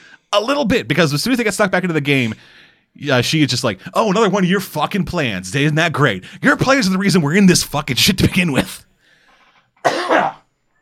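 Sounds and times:
speech: 0:00.3 - 0:08.9
harsh raspy cough with throat clearing: 0:09.8 - 0:10.5.

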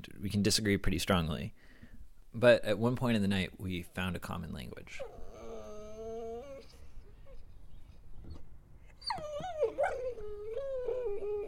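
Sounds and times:
speech: 0:00.1 - 0:01.7, 0:02.3 - 0:05.2
dog howling at flames: 0:05.0 - 0:07.4, 0:09.0 - 0:11.4.

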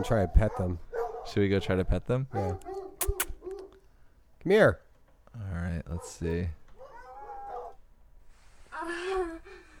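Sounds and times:
dogs barking: 0:00.0 - 0:01.6, 0:02.3 - 0:03.8, 0:05.9 - 0:07.8
speech: 0:00.0 - 0:03.2, 0:04.4 - 0:06.6.

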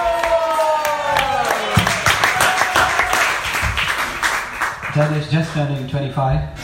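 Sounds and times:
scattered voices cheering: 0:00.0 - 0:03.7
audience applause after a kirtan: 0:00.0 - 0:05.8
speech: 0:05.0 - 0:06.6.

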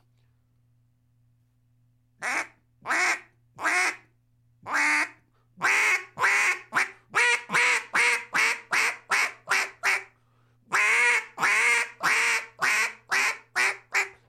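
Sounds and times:
duck call blown in mallard quacks: 0:02.2 - 0:04.1, 0:04.7 - 0:10.1, 0:10.7 - 0:14.2.

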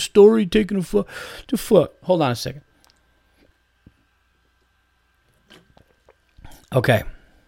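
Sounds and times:
speech: 0:00.0 - 0:02.7, 0:06.7 - 0:07.2
person sipping a drink: 0:05.3 - 0:06.8.

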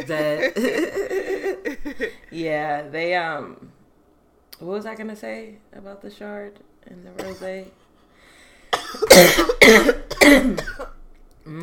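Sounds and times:
speech: 0:00.0 - 0:01.2, 0:01.9 - 0:03.8, 0:04.6 - 0:07.8, 0:08.9 - 0:11.6
person coughing harshly: 0:07.2 - 0:07.6, 0:08.7 - 0:11.0.

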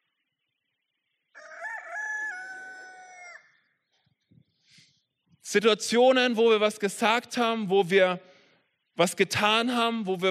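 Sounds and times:
rooster crowing: 0:01.4 - 0:03.6
speech: 0:05.5 - 0:08.3, 0:09.0 - 0:10.3.

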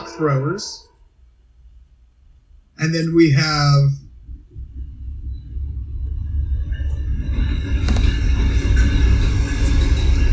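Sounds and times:
speech: 0:00.2 - 0:00.9, 0:02.8 - 0:04.0
train rumbling and rolling past: 0:03.9 - 0:10.3.

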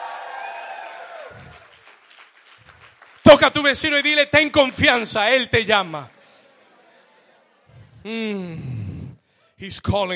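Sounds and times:
crowd applauding loudly: 0:00.0 - 0:07.0
speech: 0:03.3 - 0:06.2, 0:08.0 - 0:08.7, 0:09.6 - 0:10.1.

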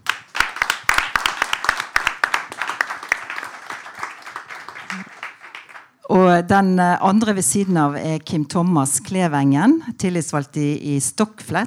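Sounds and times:
audience applause for a union club leader: 0:00.0 - 0:06.0
speech: 0:06.1 - 0:11.6.

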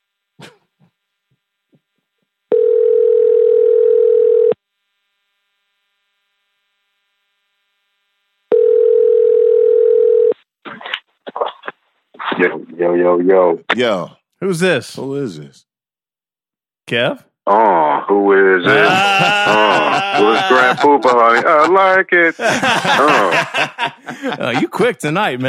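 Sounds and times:
phone ringing with long steady electronic tones: 0:02.5 - 0:04.6, 0:08.5 - 0:10.4
speech: 0:13.0 - 0:15.7, 0:16.9 - 0:25.4
laughter: 0:18.6 - 0:25.0.

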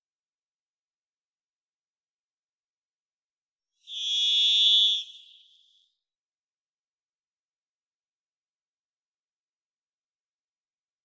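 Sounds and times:
varied thrush Ixoreus naevius singing in the Pacific Northwest, Washington: 0:03.8 - 0:05.9.

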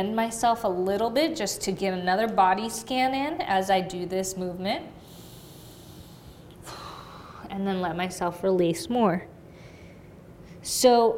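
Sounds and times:
speech: 0:00.0 - 0:05.1, 0:07.6 - 0:09.3, 0:10.6 - 0:11.1
long deep breath drawn in through the nose: 0:05.0 - 0:07.4.

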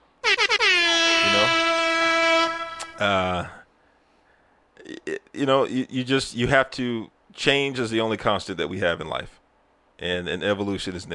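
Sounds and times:
air horn blasts: 0:00.2 - 0:03.1
speech: 0:03.0 - 0:03.6, 0:05.1 - 0:09.4, 0:10.0 - 0:11.1.

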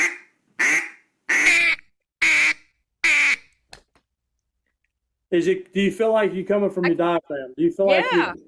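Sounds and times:
duck call blown giving quacks: 0:00.0 - 0:03.5
speech: 0:05.3 - 0:08.4.

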